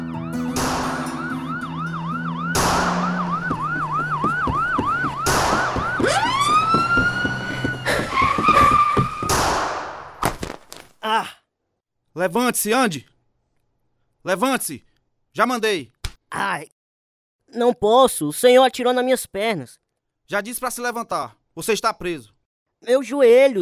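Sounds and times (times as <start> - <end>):
police car siren wailing: 0.0 - 9.3
heavy thuds and crashes: 0.4 - 1.6, 2.5 - 11.0
speech: 12.2 - 13.1, 14.2 - 16.8, 17.5 - 23.6.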